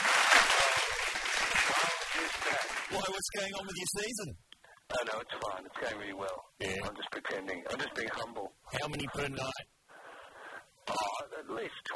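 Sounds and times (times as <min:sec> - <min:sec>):
applause: 0:00.0 - 0:03.2
speech: 0:02.5 - 0:09.7, 0:11.4 - 0:11.9.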